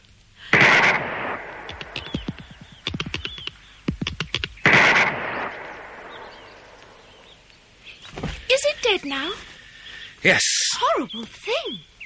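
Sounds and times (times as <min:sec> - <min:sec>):
gunshots in a garden: 0:00.5 - 0:03.3, 0:04.0 - 0:07.1
faint rattling clicks and knocks: 0:01.7 - 0:04.6
speech: 0:09.0 - 0:09.5, 0:10.2 - 0:11.9.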